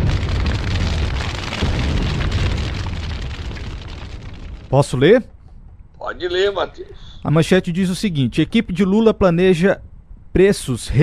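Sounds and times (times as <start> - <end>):
massive bomb explosion: 0.0 - 5.5
crackling debris from explosion: 0.0 - 5.7
speech: 4.7 - 5.3, 6.1 - 11.0.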